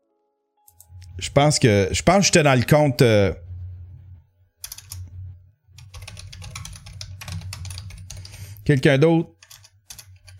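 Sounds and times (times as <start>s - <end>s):
low steady hum: 0.7s - 10.3s
speech: 1.2s - 3.5s, 8.7s - 9.4s
fast typing on a computer keyboard: 4.6s - 5.1s, 5.8s - 8.6s, 9.4s - 10.3s.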